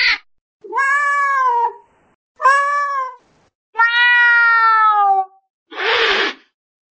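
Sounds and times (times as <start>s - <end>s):
cat meowing: 0.0s - 1.8s, 2.4s - 3.2s, 3.8s - 6.3s.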